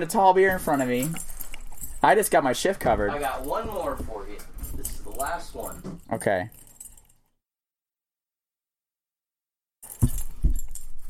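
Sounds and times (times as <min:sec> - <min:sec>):
speech: 0:00.0 - 0:01.3, 0:02.0 - 0:04.5, 0:05.2 - 0:06.6
keys jangling and rattling: 0:00.4 - 0:02.4, 0:03.1 - 0:07.3, 0:09.8 - 0:11.0.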